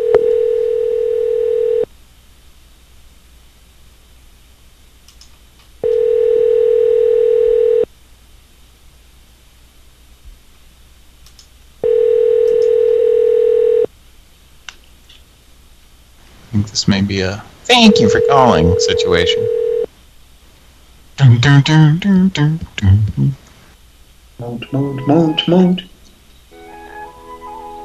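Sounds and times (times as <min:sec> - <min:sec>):
fake telephone ringing tone on a call hold line: 0:00.0 - 0:01.9, 0:05.9 - 0:07.9, 0:11.8 - 0:13.9, 0:17.7 - 0:19.9
speech: 0:16.8 - 0:19.6, 0:21.2 - 0:23.4, 0:24.5 - 0:25.9.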